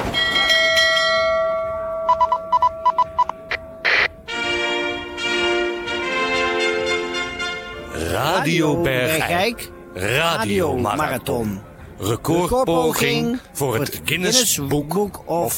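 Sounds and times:
large ship's bell being struck: 0:00.2 - 0:07.9
speech: 0:08.6 - 0:15.5.

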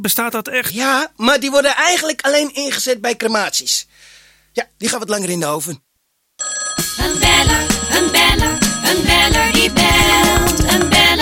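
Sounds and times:
speech: 0:00.0 - 0:07.7
telephone ringing for an incoming call with bell-like tones: 0:06.4 - 0:10.8
dense busy musical backing: 0:07.0 - 0:11.1.

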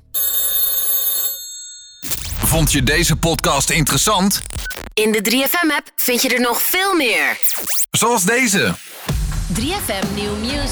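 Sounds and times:
old-style telephone bell ringing: 0:00.0 - 0:02.3
speech: 0:02.5 - 0:10.7.

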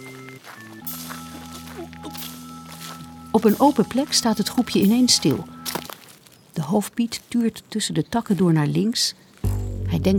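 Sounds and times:
low humming musical drone: 0:00.0 - 0:05.8, 0:09.5 - 0:10.1
group walking through a dark forest at night: 0:00.0 - 0:09.8
speech: 0:03.4 - 0:05.6, 0:06.6 - 0:09.3, 0:09.9 - 0:10.1.

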